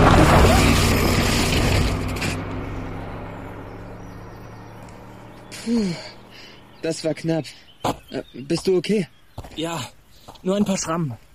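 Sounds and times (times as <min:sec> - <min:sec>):
car speeding down a steep road: 0:00.0 - 0:07.2
speech: 0:06.8 - 0:11.2.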